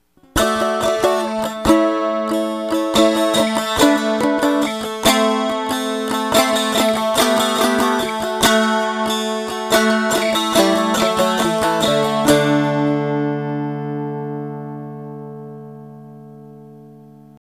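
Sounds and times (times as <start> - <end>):
cardboard dulcimer: 0.2 - 13.9.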